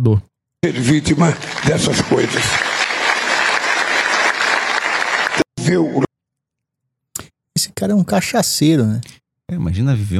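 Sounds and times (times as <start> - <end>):
speech: 0.0 - 2.8, 5.7 - 6.1, 7.8 - 10.1
audience applauding: 0.6 - 6.1.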